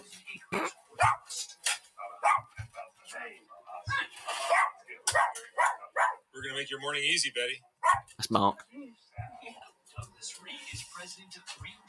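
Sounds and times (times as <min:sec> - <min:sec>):
dog barking: 0:01.0 - 0:01.3, 0:02.2 - 0:02.6, 0:04.4 - 0:06.3, 0:07.8 - 0:08.1
dog growling barks: 0:04.5 - 0:06.2
speech: 0:06.6 - 0:08.7.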